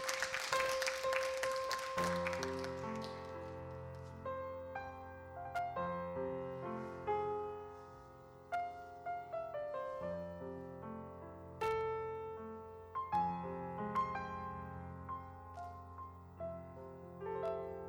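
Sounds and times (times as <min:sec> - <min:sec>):
audience applause for a pianist: 0:00.0 - 0:03.6
solo piano playing gentle sustained chords and melody: 0:00.0 - 0:17.8.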